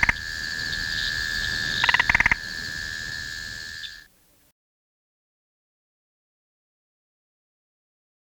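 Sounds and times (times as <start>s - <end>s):
spotted marsh frog Limnodynastes tasmaniensis calling with short clicking tok notes: 0.0s - 4.1s
steady high insect-like drone: 0.0s - 4.1s.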